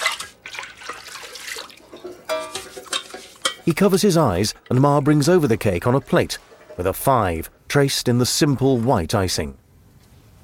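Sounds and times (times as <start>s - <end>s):
water running and splashing at a sink during washing up: 0.0s - 7.6s
speech: 3.7s - 9.6s.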